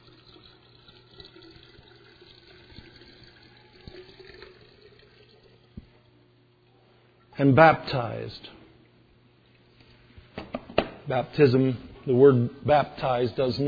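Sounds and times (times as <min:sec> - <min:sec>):
water pouring into a vessel inside a jar: 0:00.0 - 0:05.9
speech: 0:07.4 - 0:08.6, 0:11.1 - 0:13.6.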